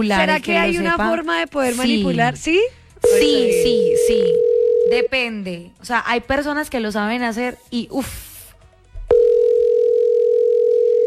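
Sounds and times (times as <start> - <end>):
speech: 0.0 - 8.3
telephone dial tone of an unanswered call: 4.1 - 4.9, 9.1 - 11.0.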